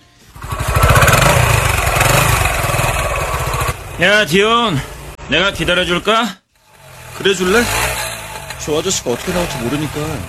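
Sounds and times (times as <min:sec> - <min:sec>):
small motorcycle engine starting up and running: 0:00.2 - 0:04.0, 0:06.6 - 0:10.2
speech: 0:04.0 - 0:06.4, 0:07.2 - 0:07.8, 0:08.6 - 0:10.2.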